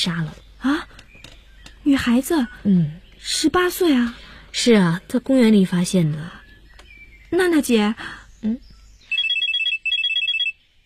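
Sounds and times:
speech: 0.0 - 0.8, 1.9 - 6.4, 7.3 - 8.6
telephone electronic trilling: 9.1 - 10.6.

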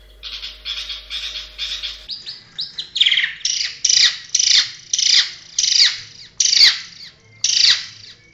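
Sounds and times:
long-tailed shrike song: 0.0 - 5.6
faint low hum: 0.0 - 8.3.

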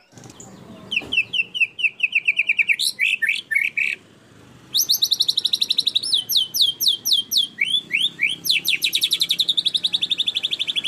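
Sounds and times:
canary song in rapid rolling tours: 0.0 - 10.8.

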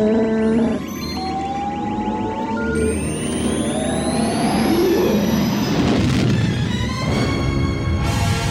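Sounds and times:
spaceship engine roaring in hyperspace with pulsing high tones: 0.0 - 8.4
spaceship jumping to light speed whining tones sweeping upward: 0.7 - 6.6.

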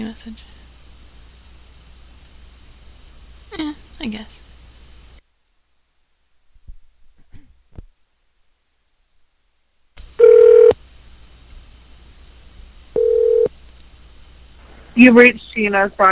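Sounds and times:
speech: 0.0 - 0.6, 3.6 - 4.4, 15.0 - 16.1
quiet telephone line hiss: 0.0 - 16.1
telephone ringback tone: 10.2 - 10.8, 13.0 - 13.5.

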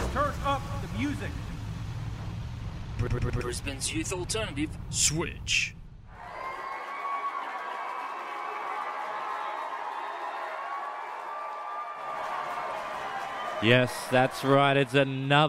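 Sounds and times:
speech: 1.0 - 1.5, 3.0 - 5.8, 13.6 - 15.4
large crowd cheering and roaring wildly: 6.1 - 15.4.

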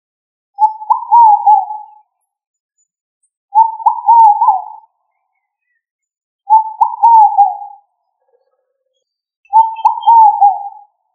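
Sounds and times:
pigeon cooing: 0.6 - 1.9, 3.6 - 4.8, 6.5 - 7.8, 9.5 - 10.9.

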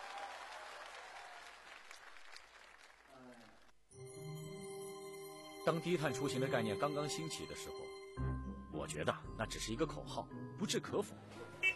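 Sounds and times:
audience applauding for two teachers: 0.0 - 3.7
speech: 5.7 - 8.2, 8.9 - 11.6.

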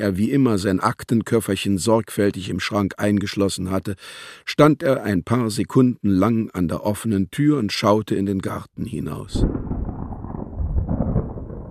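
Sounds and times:
speech: 0.0 - 9.6
thunder rumbling from an approaching thunderstorm: 9.3 - 11.7.

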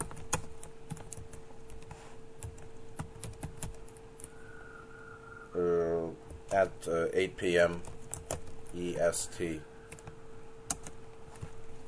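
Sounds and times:
typing on a computer keyboard: 0.0 - 4.0, 7.8 - 8.8, 10.7 - 11.0
faint steady hum: 0.0 - 11.8
speech: 6.6 - 8.0, 8.7 - 9.7.

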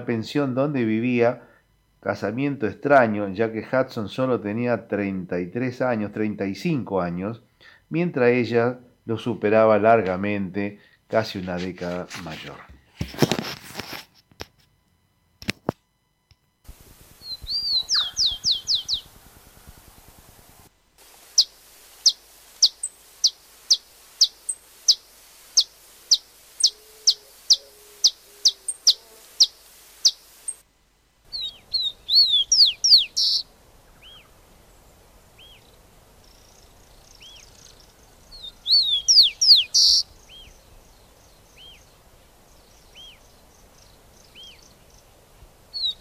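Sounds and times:
speech: 0.0 - 13.4
rufous-collared sparrow singing: 17.2 - 19.2, 21.4 - 30.6, 31.3 - 34.3, 35.4 - 45.9.

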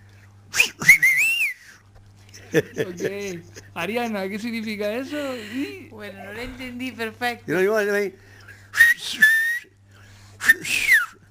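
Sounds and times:
faint low hum: 0.0 - 11.2
Silbo Gomero whistled language: 0.5 - 1.8, 8.7 - 9.8, 10.4 - 11.2
laughter: 2.3 - 3.8
speech: 2.5 - 8.3.

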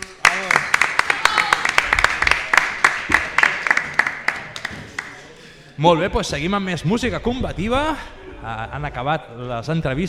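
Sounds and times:
loud applause from an audience at a live event: 0.0 - 5.3
speech: 5.8 - 10.0.

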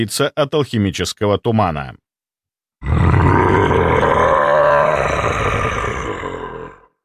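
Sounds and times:
speech: 0.0 - 2.0, 2.8 - 3.6
chained dragon roaring at an alchemical mist: 2.8 - 7.0.

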